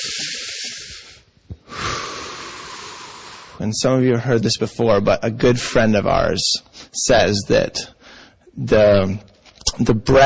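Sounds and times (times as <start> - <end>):
group taking a deep breath in and letting it out during a gathering: 0.0 - 3.6, 8.0 - 8.5
speech: 3.6 - 8.0, 8.6 - 10.2.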